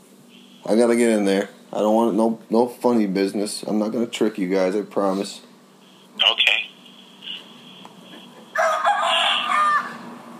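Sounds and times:
speech: 0.6s - 5.5s
rooster crowing: 8.5s - 10.2s.

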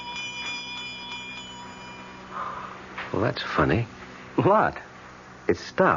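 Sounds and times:
small bell ringing: 0.0s - 2.8s
speech: 3.1s - 4.9s, 5.5s - 5.9s.

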